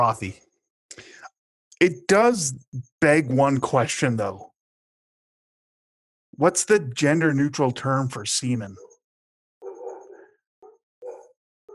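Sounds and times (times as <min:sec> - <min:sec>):
speech: 0:00.0 - 0:00.5, 0:01.8 - 0:04.5, 0:06.4 - 0:08.9
dogs barking at a stranger outside: 0:08.7 - 0:09.0, 0:09.6 - 0:11.7.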